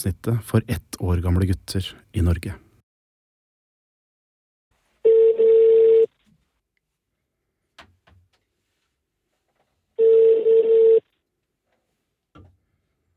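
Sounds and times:
speech: 0.0 - 2.6
phone ringback tone: 5.0 - 6.1, 10.0 - 11.0.

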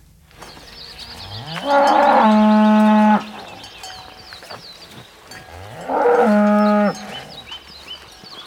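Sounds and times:
barn noise: 0.0 - 8.4
cow mooing in a barn: 1.4 - 3.4, 5.4 - 7.3.

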